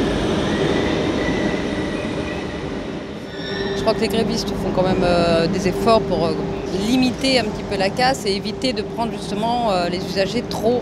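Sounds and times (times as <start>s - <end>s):
RER commuter train rumbling past: 0.0s - 10.8s
faint metallic train wheel squeal: 3.2s - 5.4s
speech: 3.9s - 10.8s.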